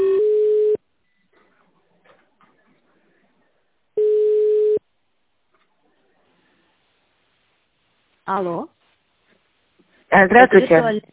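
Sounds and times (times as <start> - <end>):
ringback tones of a telephone call connecting: 0.0 - 0.8, 4.0 - 4.8
speech: 8.3 - 8.8, 10.1 - 11.1.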